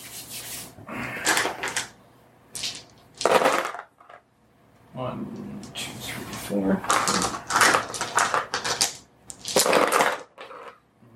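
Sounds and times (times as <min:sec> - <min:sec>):
dice rolled during a tabletop role-playing game session: 0:01.2 - 0:01.9, 0:02.6 - 0:04.2, 0:06.8 - 0:10.8
speech: 0:05.0 - 0:07.2.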